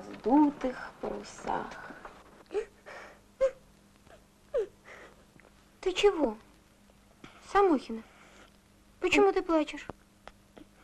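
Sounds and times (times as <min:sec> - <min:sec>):
speech: 0:00.2 - 0:01.9, 0:05.8 - 0:06.5, 0:07.5 - 0:08.1, 0:09.0 - 0:10.0
person crying softly in whimpering sobs: 0:02.5 - 0:05.1.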